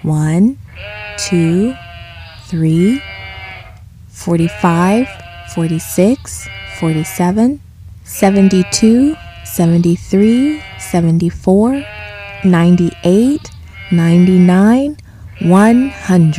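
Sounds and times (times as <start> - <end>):
speech: 0.0 - 1.8, 2.5 - 3.1, 4.2 - 16.3
flock of sheep bleating: 0.7 - 3.8, 4.4 - 7.3, 8.2 - 11.0, 11.8 - 14.6, 15.3 - 16.3.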